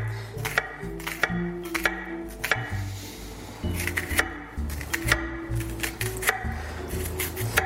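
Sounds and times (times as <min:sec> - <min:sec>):
knife dicing an onion on a cutting board: 0:00.0 - 0:02.8, 0:03.7 - 0:07.6
low steady musical backdrop: 0:00.0 - 0:07.6.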